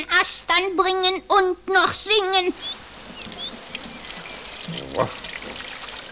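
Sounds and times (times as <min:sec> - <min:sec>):
speech: 0:00.0 - 0:03.6, 0:04.7 - 0:05.3
faint high chirps overhead: 0:02.5 - 0:05.8
water pouring and splashing: 0:02.6 - 0:06.1.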